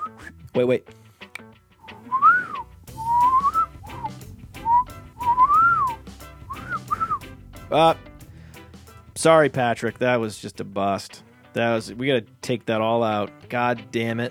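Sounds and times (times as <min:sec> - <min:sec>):
person whistling a wandering tune: 0:00.0 - 0:00.5, 0:01.8 - 0:07.3
speech: 0:00.2 - 0:01.0, 0:07.7 - 0:08.1, 0:09.2 - 0:14.3.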